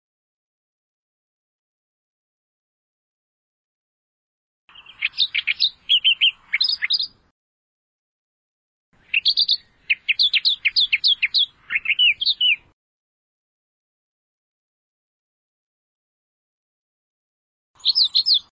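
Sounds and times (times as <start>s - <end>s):
Australian reed warbler song: 4.7s - 7.3s, 9.0s - 12.8s, 17.8s - 18.5s.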